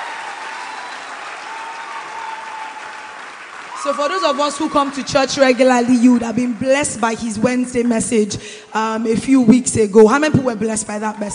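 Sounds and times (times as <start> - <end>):
sizable audience applauding: 0.0 - 8.4
speech: 3.8 - 11.3.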